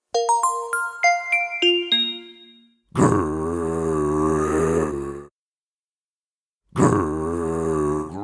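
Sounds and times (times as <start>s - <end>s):
quick descending run of chime notes: 0.1s - 2.8s
loud low rumbling hungry growl: 2.9s - 5.3s, 6.7s - 8.2s.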